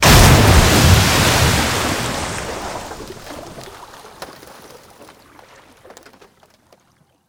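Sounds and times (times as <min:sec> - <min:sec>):
water explosions: 0:00.0 - 0:05.0.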